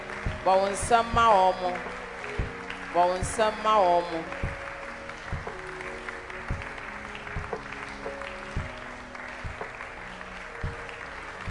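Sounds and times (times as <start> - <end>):
audience applauding: 0.0 - 11.4.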